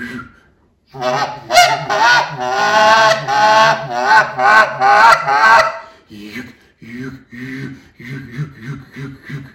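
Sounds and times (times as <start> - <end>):
goose call blown in an advanced murmur of honks and clucks: 1.0 - 5.9.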